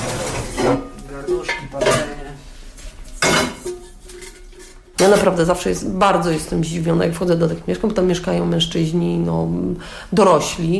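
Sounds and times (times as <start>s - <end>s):
pots and pans clattering while cooking chicken and fries: 0.0s - 2.4s, 3.1s - 5.6s
speech: 5.0s - 10.7s.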